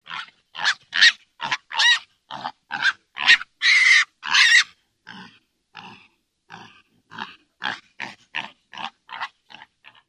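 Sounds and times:
pigs squealing: 0:00.1 - 0:04.7.

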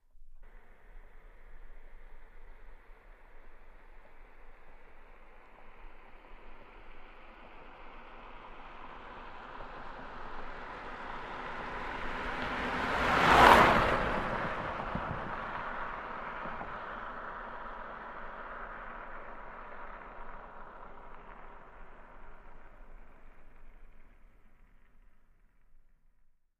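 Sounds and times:
studded car tires on snow: 0:00.0 - 0:26.5.

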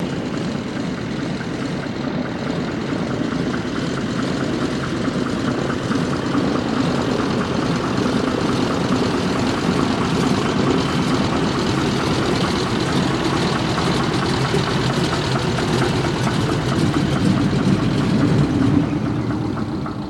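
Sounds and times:
seaplane taxiing off: 0:00.0 - 0:20.0.

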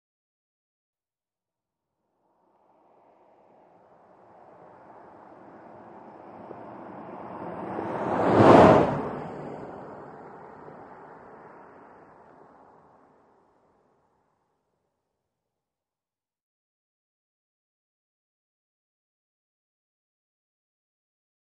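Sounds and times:
small compact car passing left to right: 0:02.3 - 0:13.7.

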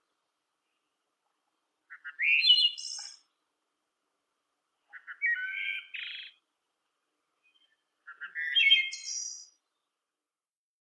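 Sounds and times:
blackbird song: 0:00.0 - 0:03.6, 0:04.8 - 0:06.5, 0:07.2 - 0:10.1.

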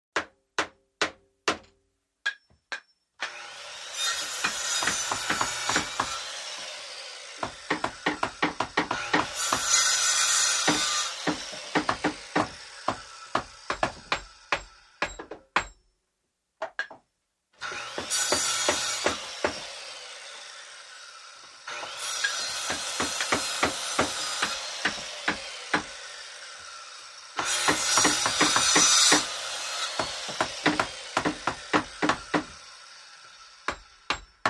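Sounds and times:
large indoor construction noise: 0:02.3 - 0:15.8, 0:16.7 - 0:34.4.

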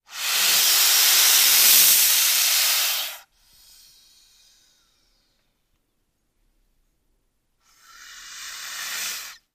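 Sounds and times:
multiple albino boas hissing: 0:00.0 - 0:05.3, 0:07.6 - 0:09.5.

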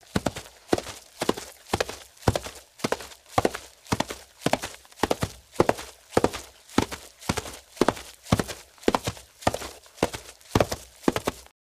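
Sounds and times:
horse at a medium gallop: 0:00.1 - 0:11.5.

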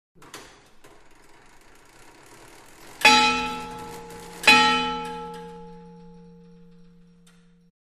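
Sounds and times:
19th-century clock tower bell: 0:03.0 - 0:07.7.

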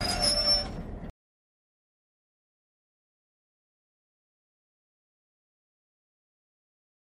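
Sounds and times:
locomotive brakes short bursts: 0:00.0 - 0:01.0.

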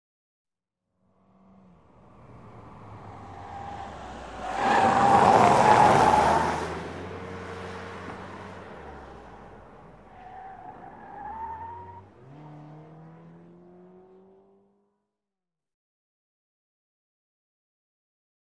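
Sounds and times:
compact car cornering: 0:01.2 - 0:14.9.

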